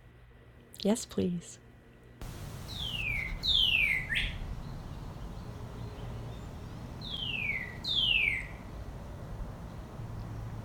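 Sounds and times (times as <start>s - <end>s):
low background noise: 0.0s - 10.6s
speech: 0.8s - 1.6s
Northern Cardinal whistling song: 2.7s - 8.6s.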